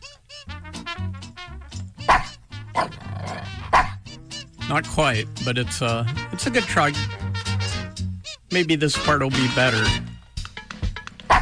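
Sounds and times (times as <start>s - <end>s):
dog barking: 2.0s - 4.0s
speech: 4.7s - 7.2s, 8.5s - 10.1s.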